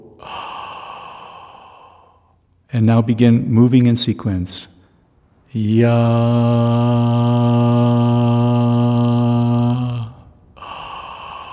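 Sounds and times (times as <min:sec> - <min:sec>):
deep inhale during a vocal breathing exercise: 0:00.0 - 0:02.5, 0:06.8 - 0:11.5
speech: 0:02.7 - 0:04.8, 0:05.5 - 0:08.2.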